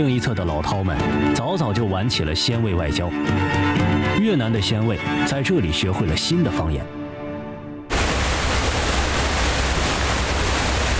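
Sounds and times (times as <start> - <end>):
speech: 0.0 - 7.0
waterfall roaring on the China-Vietnam border: 7.9 - 10.9.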